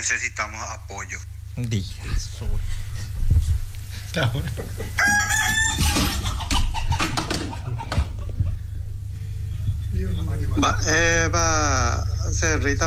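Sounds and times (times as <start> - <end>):
speech: 0.0 - 6.4, 10.0 - 12.8
hens clucking in a busy barnyard: 0.0 - 12.8
laughter: 0.0 - 12.8
rooster crowing: 1.7 - 12.1.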